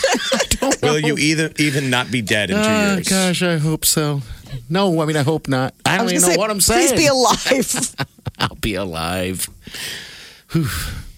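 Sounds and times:
laughter: 0.0s - 1.7s, 7.0s - 8.6s
speech: 0.8s - 11.0s
heavy out-of-breath breathing: 9.6s - 11.1s.

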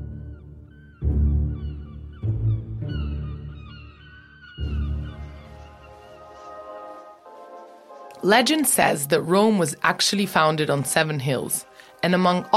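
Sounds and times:
seagulls calling: 0.3s - 8.1s
speech: 8.2s - 12.5s.

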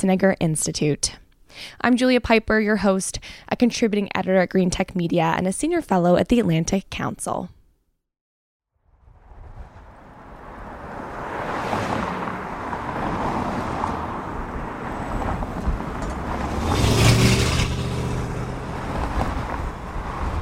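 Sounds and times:
speech: 0.0s - 7.6s
steady road roar: 8.8s - 20.4s
cars whizzing along a city boulevard in Los Angeles: 8.9s - 20.4s.

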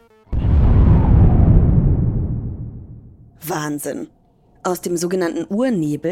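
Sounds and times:
deep explosion sound effect of the Big Bang: 0.3s - 3.4s
speech: 3.6s - 6.0s.

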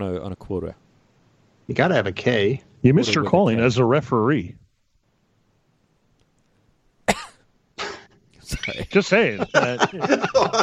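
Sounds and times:
speech: 0.0s - 0.9s, 1.7s - 4.6s, 8.6s - 10.6s
person coughing: 7.1s - 8.2s
laughter: 8.5s - 10.6s.

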